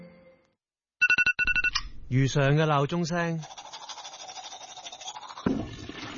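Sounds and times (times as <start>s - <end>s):
speech: 2.1s - 3.6s
toothbrush scrubbing teeth: 3.2s - 6.1s.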